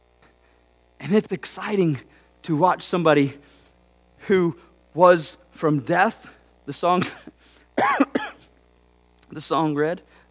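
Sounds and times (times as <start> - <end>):
faint hum: 0.0 - 10.2
speech: 1.1 - 3.6, 4.2 - 8.1, 9.3 - 10.2
person coughing: 7.0 - 8.5.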